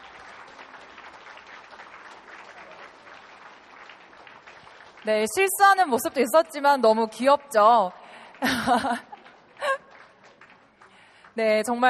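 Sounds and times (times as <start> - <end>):
audience clapping: 0.0 - 11.8
speech: 5.0 - 9.1, 11.4 - 11.8
laughter: 8.4 - 10.1.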